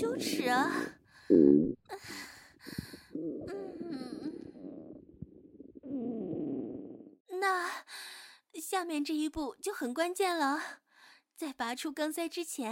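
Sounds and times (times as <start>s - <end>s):
wet bubbling stomach rumbles and intestinal gurgles: 0.0s - 7.2s
speech: 0.2s - 2.8s, 8.7s - 10.8s, 11.4s - 12.7s.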